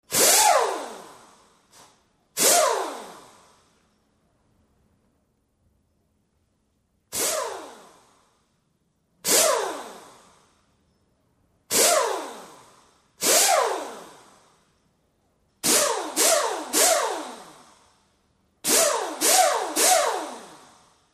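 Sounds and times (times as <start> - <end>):
pneumatic drill: 0.0 - 4.1, 7.1 - 8.6, 9.2 - 14.9, 15.6 - 21.1.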